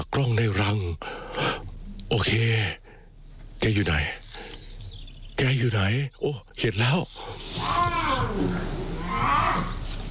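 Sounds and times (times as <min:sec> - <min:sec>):
low steady rumble: 0:00.0 - 0:10.0
speech: 0:02.2 - 0:02.8, 0:03.6 - 0:04.2, 0:05.6 - 0:09.7
bear cubs crying in den: 0:07.1 - 0:10.0.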